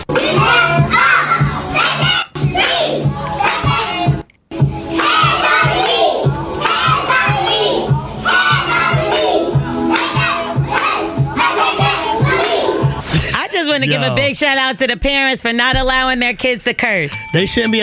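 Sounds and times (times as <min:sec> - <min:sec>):
small children singing along to a rap verse: 0:00.0 - 0:13.2
speech: 0:13.9 - 0:17.8.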